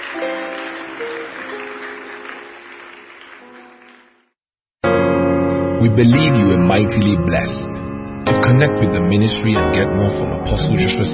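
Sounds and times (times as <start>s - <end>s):
large crowd clapping and applauding: 0.0s - 4.3s
speech: 5.8s - 11.1s.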